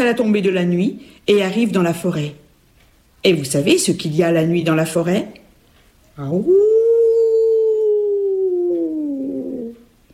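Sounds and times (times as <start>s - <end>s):
speech: 0.0s - 2.4s, 3.2s - 5.4s, 6.2s - 6.7s
lone wolf howling: 6.4s - 9.9s.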